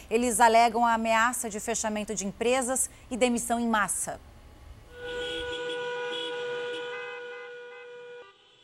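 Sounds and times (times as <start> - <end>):
rumble of traffic: 0.0 - 8.6
speech: 0.1 - 4.3
car horn blaring in a protest car convoy: 4.9 - 8.6.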